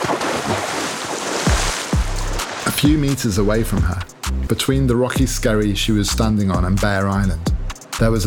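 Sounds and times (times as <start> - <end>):
heavy water splashes in the Arctic sea between a rocky skerry and Bear Island: 0.0 - 4.1
surf washing: 0.0 - 5.2
wind: 0.0 - 8.2
speech: 2.8 - 8.2.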